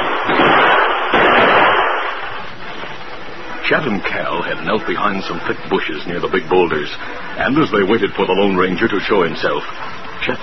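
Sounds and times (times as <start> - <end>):
gunfire exchanged in a radio-drama western shootout on a rocky ridge slope: 0.0 - 2.5
speech: 3.7 - 10.4.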